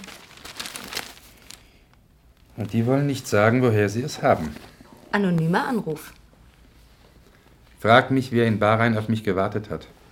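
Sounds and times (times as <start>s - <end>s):
newspaper rustling and crinkling as it is handed over: 0.0s - 3.3s
speech: 2.6s - 6.2s, 7.8s - 10.0s.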